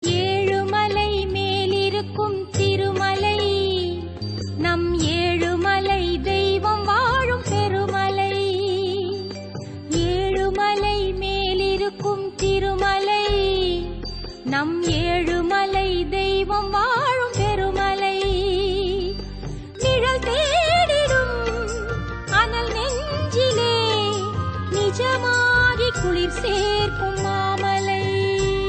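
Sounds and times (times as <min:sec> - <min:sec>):
Tamil devotional song: 0:00.0 - 0:28.6.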